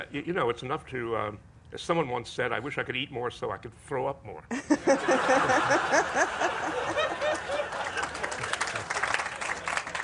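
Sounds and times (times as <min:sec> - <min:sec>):
speech: 0:00.0 - 0:07.0
audience laughing: 0:04.6 - 0:09.1
audience applause: 0:05.4 - 0:10.0.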